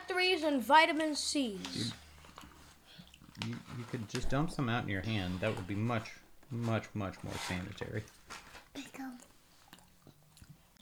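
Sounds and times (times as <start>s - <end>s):
speech: 0.1s - 2.0s, 3.4s - 8.2s
wet open-mouthed chewing of crunchy pistachios: 2.0s - 3.9s, 8.7s - 10.7s.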